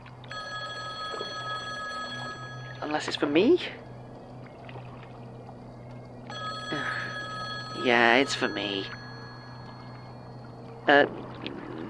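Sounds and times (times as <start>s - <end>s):
low hum: 0.0s - 11.8s
payphone ringing: 0.3s - 3.6s, 6.3s - 10.8s
speech: 2.9s - 3.8s, 7.8s - 9.0s, 10.9s - 11.3s.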